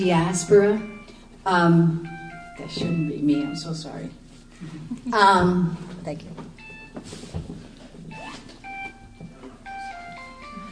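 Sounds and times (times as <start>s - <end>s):
speech: 0.0s - 7.6s
room noise: 0.0s - 10.6s
phone ringtone electronic melody: 0.1s - 1.2s, 1.9s - 3.8s, 6.6s - 7.0s, 8.1s - 10.6s.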